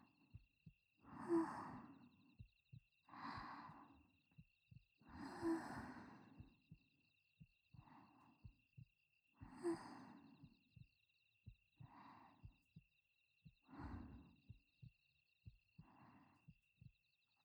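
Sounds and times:
steady heartbeat: 0:00.0 - 0:17.4
slow airy breaths: 0:01.0 - 0:02.4, 0:03.0 - 0:04.4, 0:05.0 - 0:06.8, 0:07.8 - 0:08.6, 0:09.4 - 0:10.8, 0:11.8 - 0:12.6, 0:13.6 - 0:14.6, 0:15.8 - 0:16.6.

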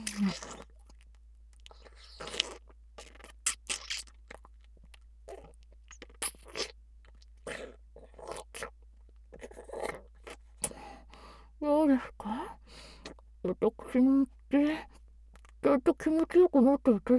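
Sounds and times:
food bitten and chewed: 0:00.0 - 0:10.8
speech: 0:00.2 - 0:00.6, 0:13.5 - 0:14.3, 0:15.9 - 0:17.1.

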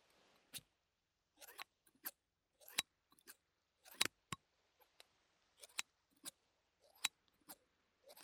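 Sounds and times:
scissors cutting paper: 0:01.4 - 0:04.1, 0:05.6 - 0:08.2.

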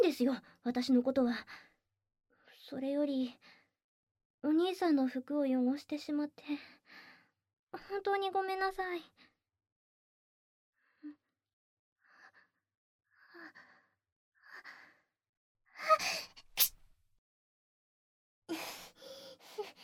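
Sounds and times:
speech: 0:00.1 - 0:01.7, 0:02.7 - 0:03.6, 0:04.4 - 0:07.0, 0:07.7 - 0:09.3, 0:15.8 - 0:16.3
quick hitching intakes of breath: 0:16.0 - 0:16.8
person sneezing: 0:16.5 - 0:16.7.

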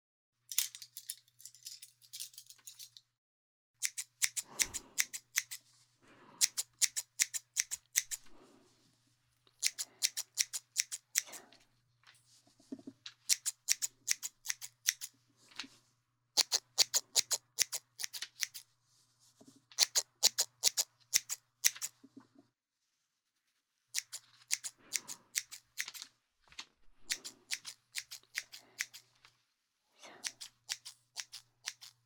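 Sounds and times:
scissors thinning out thick hair: 0:03.8 - 0:05.6, 0:06.4 - 0:08.2, 0:09.6 - 0:11.4, 0:13.3 - 0:15.1, 0:16.4 - 0:18.6, 0:19.8 - 0:21.9, 0:24.0 - 0:26.0, 0:27.0 - 0:29.1, 0:30.2 - 0:32.0.

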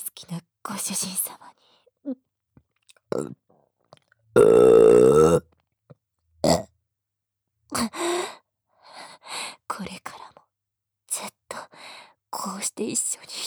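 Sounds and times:
speech: 0:00.2 - 0:02.2, 0:03.2 - 0:03.4
long loud rumbling burp: 0:04.4 - 0:05.5.

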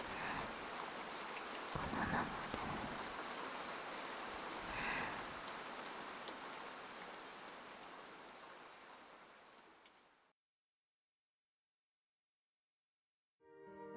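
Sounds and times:
steady rain falling: 0:00.0 - 0:10.4.

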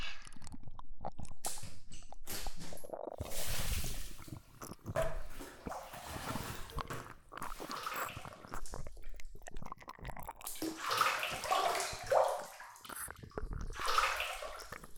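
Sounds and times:
bath water splashing in a tub with hot-spring bath powder: 0:03.2 - 0:14.9.

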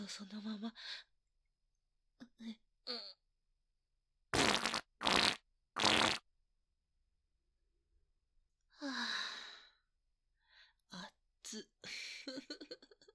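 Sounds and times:
speech: 0:00.1 - 0:01.1, 0:02.4 - 0:03.2, 0:08.8 - 0:09.2, 0:10.9 - 0:12.5
loud raspy fart bursts: 0:04.4 - 0:06.2.

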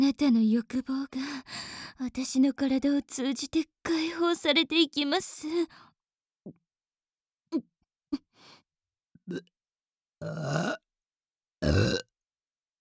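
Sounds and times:
speech: 0:00.1 - 0:05.9, 0:07.5 - 0:08.2, 0:09.3 - 0:09.5, 0:10.2 - 0:10.8
burping with short clicky burps and long rumbling belches: 0:10.2 - 0:10.8, 0:11.6 - 0:12.1.

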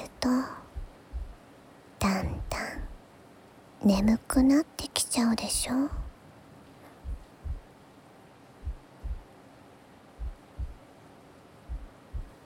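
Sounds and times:
soft low hum: 0:00.0 - 0:03.0, 0:03.8 - 0:06.2, 0:06.8 - 0:07.7, 0:08.6 - 0:09.3, 0:10.2 - 0:10.8, 0:11.6 - 0:12.4
speech: 0:00.2 - 0:00.6, 0:03.8 - 0:06.0
slow steady heartbeat: 0:00.7 - 0:01.4, 0:02.2 - 0:03.0, 0:05.9 - 0:06.2, 0:07.0 - 0:07.7, 0:08.6 - 0:09.3, 0:10.2 - 0:10.8, 0:11.7 - 0:12.4.

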